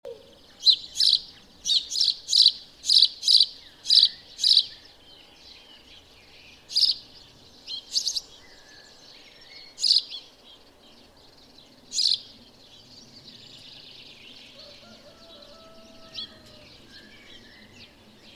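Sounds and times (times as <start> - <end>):
House sparrow Passer domesticus chirps: 0.1 - 18.3.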